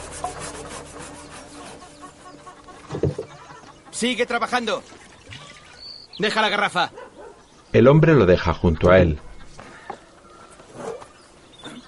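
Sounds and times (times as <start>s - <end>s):
hand saw cutting through wooden logs in a house courtyard: 0.0s - 3.2s
speech: 4.0s - 5.0s, 6.2s - 7.0s, 7.7s - 9.3s.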